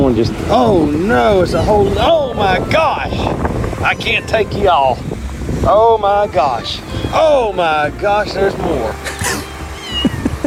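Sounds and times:
speech: 0:00.1 - 0:09.1
kitten meowing by the side of a road: 0:09.1 - 0:10.4.

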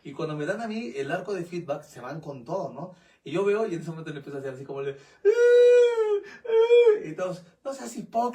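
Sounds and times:
speech: 0:00.1 - 0:05.8, 0:06.7 - 0:08.3
voice imitating fake whimpering crying: 0:05.2 - 0:07.4.

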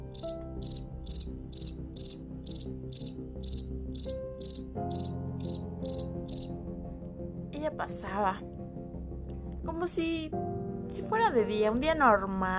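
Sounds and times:
crickets chirping at night: 0:00.0 - 0:06.5
speech: 0:07.7 - 0:08.5, 0:09.7 - 0:12.5.

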